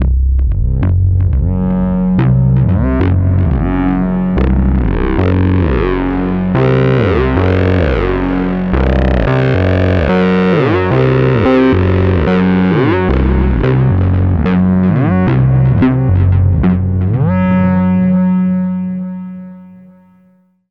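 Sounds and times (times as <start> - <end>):
two sawtooth oscillator synth with distortion and delay: 0.0 - 20.1.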